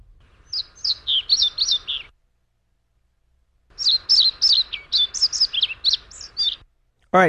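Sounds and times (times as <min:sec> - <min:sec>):
male European pied flycatcher song after mating: 0:00.3 - 0:02.2, 0:03.7 - 0:06.7.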